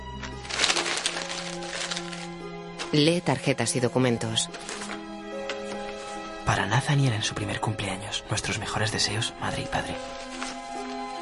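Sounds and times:
papers rustling as they are sorted into piles on a table: 0.0 - 3.2, 4.3 - 6.4, 8.5 - 11.2
speech: 2.9 - 4.9, 6.5 - 10.4.

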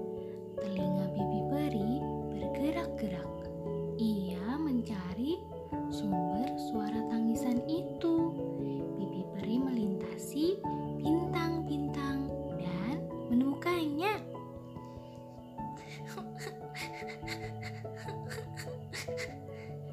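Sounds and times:
soft sustained tonal background: 0.0 - 19.9
child crying: 15.8 - 19.4.

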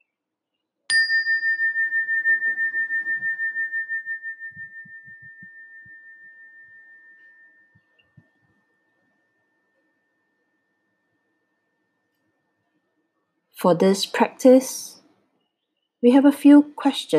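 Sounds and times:
meditation chime struck at the end of a meditation practice: 0.9 - 11.2
speech: 13.6 - 14.9, 16.0 - 17.1.

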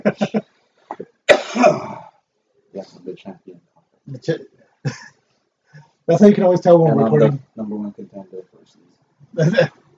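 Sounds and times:
man coughing: 0.0 - 2.2, 4.9 - 5.2, 9.4 - 9.8
speech: 3.1 - 5.1, 6.1 - 7.9, 9.4 - 9.8.

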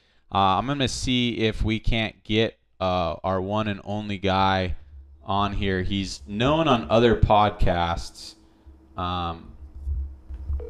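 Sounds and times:
speech: 0.3 - 8.4, 9.0 - 9.5
low rumbling: 3.7 - 10.6.

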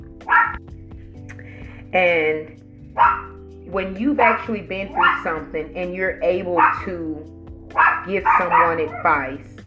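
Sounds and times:
puppy giving a short high-pitched bark: 0.2 - 0.6, 3.0 - 3.4, 4.2 - 5.4, 6.6 - 6.9, 7.7 - 9.3
puppy giving faint yips: 0.3 - 0.6, 3.0 - 3.3, 6.6 - 6.8, 7.8 - 9.2
speech: 1.9 - 7.4, 8.0 - 9.6.

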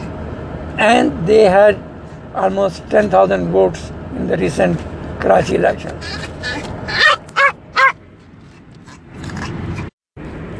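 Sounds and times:
speech: 0.8 - 6.7
dog giving quick sharp barks: 6.0 - 8.0.

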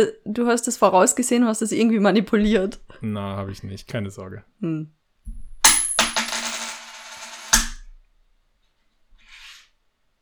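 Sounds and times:
speech: 0.0 - 5.0
flipped coin clinking and spinning down to rest: 5.7 - 7.8.

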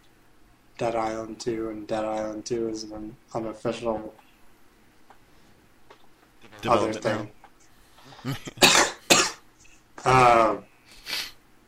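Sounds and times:
speech: 0.8 - 4.2, 6.6 - 7.4, 8.2 - 8.8, 10.0 - 10.7
person with a worsening cough coughing: 8.2 - 9.4.

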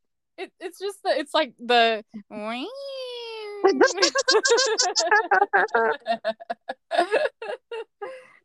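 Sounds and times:
speech: 0.4 - 3.0, 3.6 - 7.9
voice imitating a chirpy elated creature giggle: 3.6 - 8.0.

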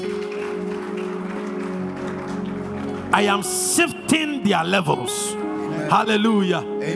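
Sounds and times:
crowd clapping in a large room: 0.0 - 4.3
music: 0.0 - 6.9
speech: 3.1 - 6.9.

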